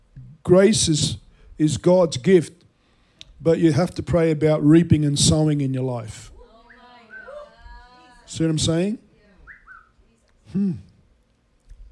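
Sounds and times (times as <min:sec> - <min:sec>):
speech: 0:00.4 - 0:02.6, 0:03.4 - 0:06.3, 0:08.3 - 0:09.0, 0:10.5 - 0:10.9
rising-and-falling vocal whoop: 0:06.4 - 0:08.3
high-pitched whistle tones like a dog whistle: 0:06.6 - 0:07.7, 0:09.4 - 0:10.0.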